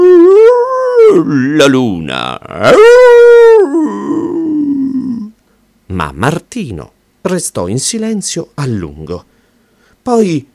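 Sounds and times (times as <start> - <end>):
wolf howling: 0.0 - 1.7, 2.4 - 5.3
speech: 1.2 - 4.2, 5.9 - 9.4, 10.0 - 10.5.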